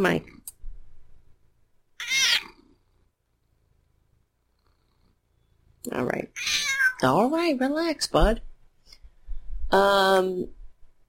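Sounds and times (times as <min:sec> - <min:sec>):
speech: 0:00.0 - 0:00.4, 0:05.8 - 0:08.5, 0:09.7 - 0:10.6
male cat giving a loud high meow into a microphone: 0:02.0 - 0:02.6, 0:06.4 - 0:07.0
faint low rumbling cat purr: 0:02.5 - 0:05.8.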